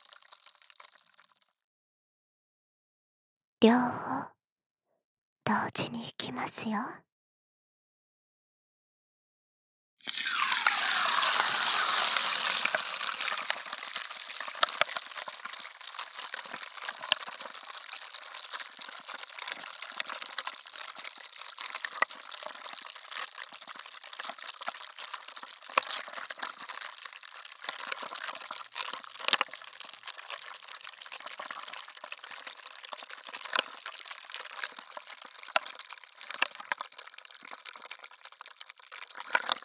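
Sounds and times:
carbonated water fizzing: 0.0 - 1.5, 10.0 - 39.6
speech: 3.6 - 4.3, 5.5 - 7.1.

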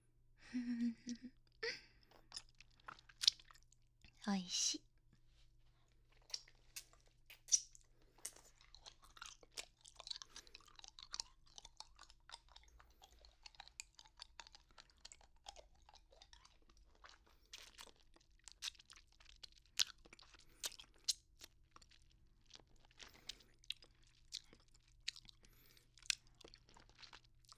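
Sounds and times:
someone licking and eating hard candy: 1.0 - 4.2, 6.1 - 27.5
speech: 4.3 - 4.9.

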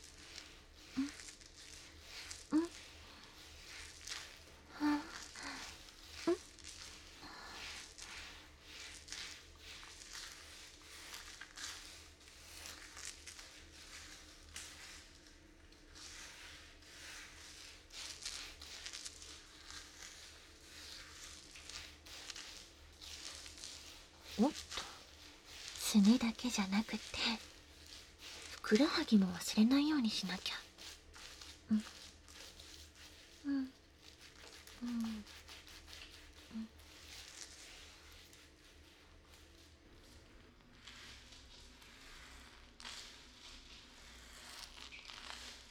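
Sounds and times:
body brush scrubbing skin: 0.0 - 45.7
speech: 24.4 - 24.7, 25.9 - 27.5, 28.7 - 30.6, 31.7 - 32.0.

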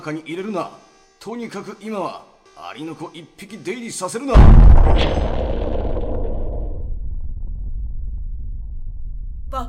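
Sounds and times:
speech: 0.0 - 5.5
heavy explosion: 4.3 - 9.5.

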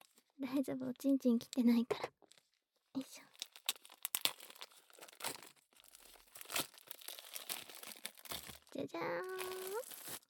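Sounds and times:
speech: 0.4 - 2.2, 9.0 - 9.6
plastic packaging of a newly bought product crinkling and tearing: 1.3 - 10.2.

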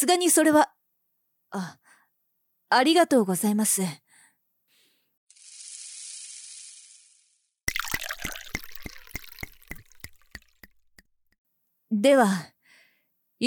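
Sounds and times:
speech: 0.0 - 0.8, 1.5 - 1.8, 2.7 - 4.0, 11.9 - 12.6
drink pouring into a glass: 7.7 - 11.1
bubbles fizzing and popping in a glass: 7.7 - 11.4.

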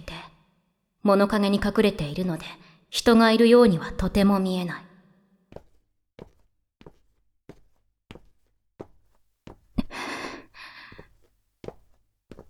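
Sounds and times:
speech: 1.0 - 4.9
footsteps of a person walking along a street at night: 5.5 - 9.8, 10.6 - 12.4
sharp breathy gasp or sigh: 9.8 - 11.1.

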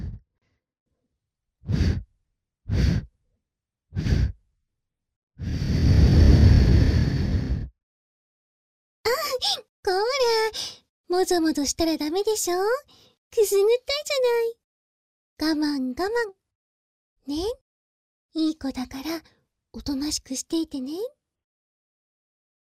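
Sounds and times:
breath blown gently into an ear: 1.7 - 2.0, 2.7 - 3.1, 5.4 - 7.7
speech: 9.4 - 14.6, 15.4 - 16.4, 17.2 - 17.6, 18.4 - 21.2.

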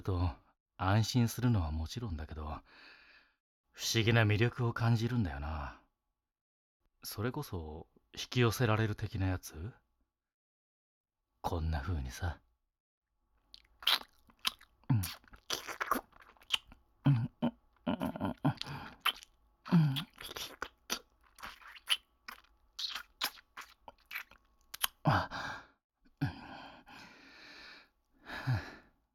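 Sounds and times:
speech: 0.0 - 3.0, 3.8 - 5.8, 7.0 - 9.8, 11.4 - 12.4, 14.9 - 15.2
crisp crunches of food being bitten and chewed: 13.6 - 16.8, 18.0 - 25.0
soft breaths and sighs: 25.0 - 29.0.

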